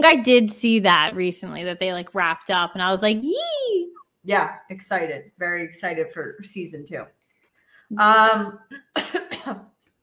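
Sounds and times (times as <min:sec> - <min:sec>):
speech: 0:00.0 - 0:07.2, 0:07.9 - 0:09.7
person coughing from a tickle in the throat: 0:08.8 - 0:09.8.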